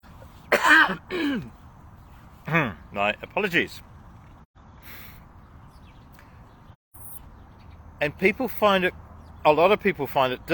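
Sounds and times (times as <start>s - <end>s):
short rough coughs: 0.5s - 1.5s
speech: 0.8s - 1.6s, 2.5s - 3.9s, 8.0s - 10.5s.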